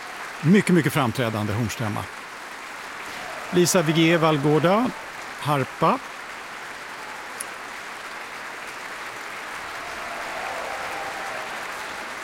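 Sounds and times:
large audience applause in a concert hall: 0.0s - 12.2s
speech: 0.4s - 2.2s, 3.5s - 6.1s
faint audience cheering in a concert hall: 3.0s - 8.3s, 9.1s - 12.2s.

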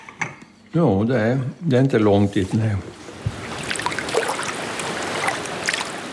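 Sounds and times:
speech: 0.7s - 3.0s
rushing river water: 2.9s - 6.1s.

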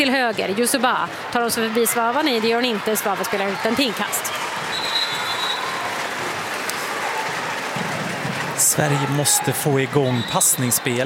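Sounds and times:
speech: 0.0s - 4.5s, 8.8s - 11.0s
stadium crowd roar: 0.0s - 11.0s
shrill whistle: 4.7s - 5.8s.

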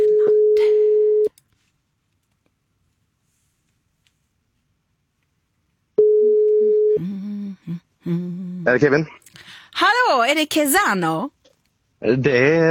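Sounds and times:
telephone ringback tone: 0.0s - 1.3s, 6.0s - 7.0s
speech: 8.7s - 11.4s, 12.0s - 12.6s.

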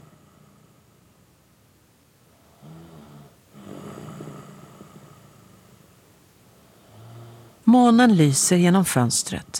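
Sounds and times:
man snoring in deep sleep: 0.0s - 1.0s, 2.4s - 5.8s, 6.6s - 7.6s
soft steady hiss: 0.0s - 9.5s
speech: 7.7s - 9.5s.

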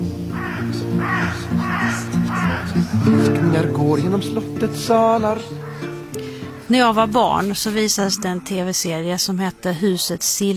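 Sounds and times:
crows cawing around a castle tower: 0.2s - 8.6s
speech: 1.0s - 10.5s.

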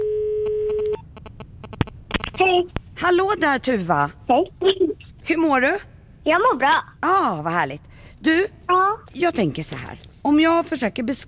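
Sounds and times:
telephone ringback tone while a call is being placed: 0.0s - 1.0s
speech: 2.4s - 11.2s.

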